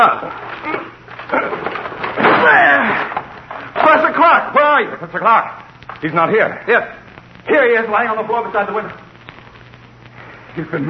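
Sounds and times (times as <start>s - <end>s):
speech: 0.0s - 0.8s, 4.3s - 9.1s, 10.6s - 10.8s
locked door crashing as it gives way: 1.1s - 4.1s.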